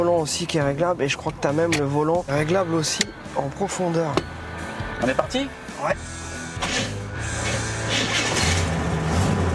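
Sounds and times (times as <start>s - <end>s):
speech: 0.0s - 4.4s, 5.0s - 6.8s
big-block engine of a 1971 car cranking on the starter: 6.6s - 9.4s.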